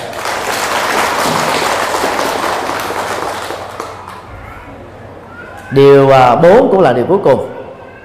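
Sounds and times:
audience applause: 0.0 - 4.3
speech: 5.7 - 7.6.

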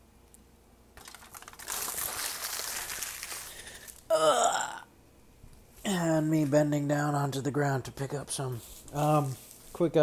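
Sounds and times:
Brussels sprouts shaken off crinkling aluminum foil: 1.0 - 4.1, 8.6 - 9.8
speech: 4.2 - 4.4, 5.9 - 10.0.

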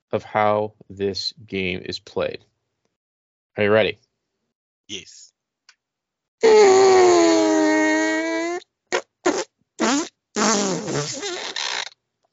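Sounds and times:
speech: 0.1 - 2.5, 3.6 - 4.0, 4.9 - 5.3, 6.4 - 7.8
long loud buzzing fart: 6.4 - 12.0.

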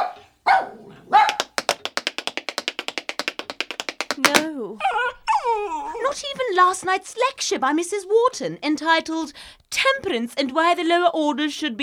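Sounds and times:
dog barking: 0.0 - 1.6
speech: 4.2 - 5.1, 6.1 - 11.8.

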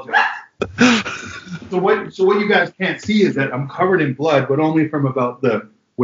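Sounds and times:
small dogs yapping: 0.0 - 0.6
laughter: 0.6 - 3.6
speech: 1.7 - 6.0.

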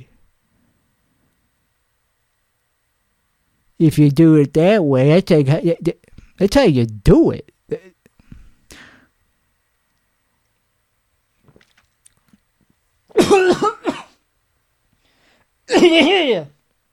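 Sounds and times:
speech: 3.8 - 7.9, 13.2 - 13.9, 15.7 - 16.6
raspy throat-clearing coughs: 7.7 - 8.0, 13.1 - 14.2, 15.7 - 16.5
soft breath: 8.2 - 9.2, 14.9 - 15.6.

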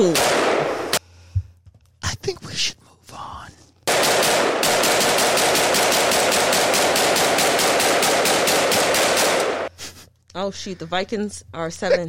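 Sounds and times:
AK rifle rapid automatic gunfire: 0.0 - 1.0, 3.9 - 9.7
speech: 10.5 - 12.0.

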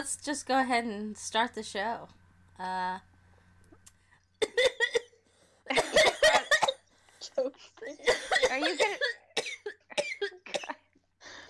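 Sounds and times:
speech: 0.0 - 3.1, 4.4 - 4.7, 7.3 - 9.2
person coughing after accidentally inhaling saliva: 4.4 - 6.9, 7.8 - 10.9.

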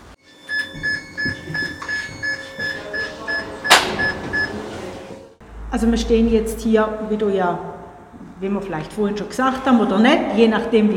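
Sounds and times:
electronic warning beeps at funicular valley station: 0.2 - 4.6
sharp mechanical clunk of funicular: 3.7 - 4.4
low rumbling hum of departing funicular car in hall: 5.3 - 8.5
speech: 5.7 - 7.7, 8.4 - 10.9.

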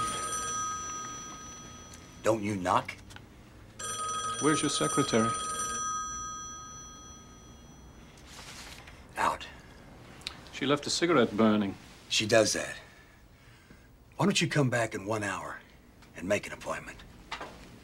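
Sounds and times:
telephone bell ringing: 0.0 - 2.4, 3.8 - 8.3
speech: 2.2 - 3.0, 4.4 - 5.4, 10.6 - 12.8, 14.2 - 15.6, 16.2 - 17.0.

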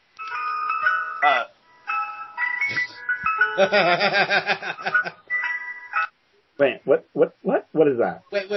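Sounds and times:
tinkling ice cream truck jingle with bright electronic melody: 0.2 - 6.1
speech: 1.2 - 1.5, 3.6 - 5.2, 6.6 - 8.5.

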